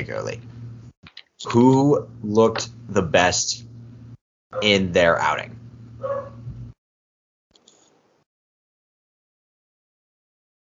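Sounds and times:
speech: 0:00.1 - 0:00.5, 0:01.4 - 0:03.7, 0:04.5 - 0:06.2
dog barking: 0:06.0 - 0:06.4.

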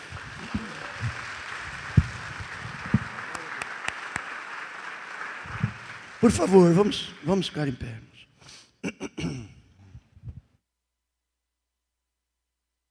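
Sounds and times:
large group applauding in a reverberant room: 0:00.0 - 0:07.8
speech: 0:06.2 - 0:08.1.

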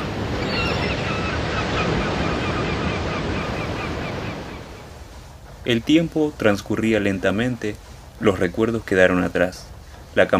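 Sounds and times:
seagulls crying while flying above the waves: 0:00.0 - 0:04.9
cold wind blowing off the water: 0:00.0 - 0:10.3
surf roaring: 0:00.0 - 0:10.3
speech: 0:05.6 - 0:10.3.

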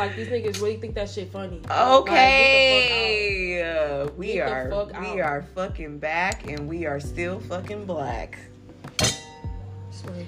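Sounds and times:
speech: 0:00.0 - 0:09.2
glass clink in a self-toast: 0:09.0 - 0:09.5.

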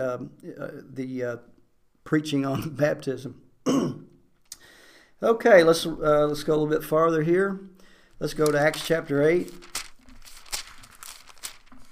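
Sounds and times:
speech: 0:00.0 - 0:04.1, 0:05.2 - 0:09.7
soft paper crinkle: 0:06.1 - 0:06.6, 0:08.1 - 0:11.9
book pages being turned: 0:08.2 - 0:11.9.

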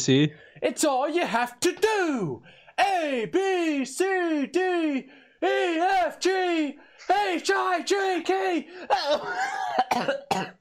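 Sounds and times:
speech: 0:00.0 - 0:10.5
person coughing: 0:08.9 - 0:10.5.

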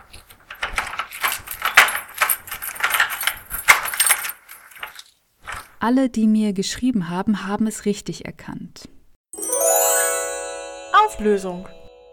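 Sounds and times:
key rattling and scraping in a door lock: 0:00.6 - 0:05.1
metallic jingling of keys: 0:01.3 - 0:05.0
speech: 0:05.8 - 0:09.0, 0:11.1 - 0:11.8.

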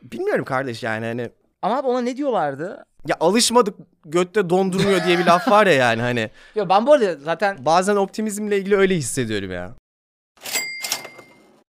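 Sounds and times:
speech: 0:00.2 - 0:09.8
laughter: 0:04.7 - 0:05.9
bright bell ding: 0:10.5 - 0:11.5.

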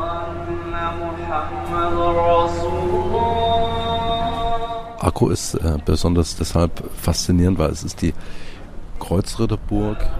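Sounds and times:
muezzin's call to prayer in Akko: 0:00.0 - 0:08.1, 0:09.2 - 0:10.1
speech: 0:05.1 - 0:10.1.

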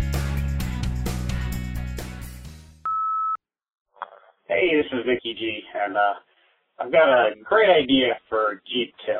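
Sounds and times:
music: 0:00.0 - 0:02.8
voicemail beep: 0:02.9 - 0:03.4
speech: 0:04.6 - 0:09.1.

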